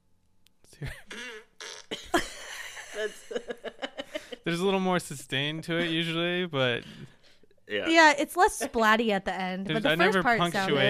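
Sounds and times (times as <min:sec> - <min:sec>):
speech: 0:00.8 - 0:01.1, 0:03.0 - 0:03.6, 0:04.5 - 0:10.8
person blowing a wet sputtering raspberry imitating a fart: 0:01.1 - 0:02.1
laughter: 0:02.2 - 0:04.8, 0:05.7 - 0:07.1.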